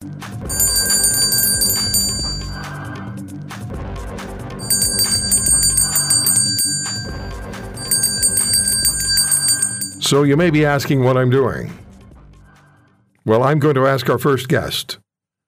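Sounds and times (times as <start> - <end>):
electric-like bells ringing shrilly: 0.5 - 2.8, 4.6 - 10.1
speech: 10.1 - 11.8, 13.2 - 15.0.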